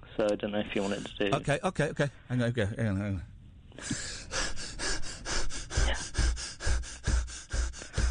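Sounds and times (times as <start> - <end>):
speech: 0.2 - 4.1
voice imitating running with heavy rhythmic panting: 3.8 - 8.0.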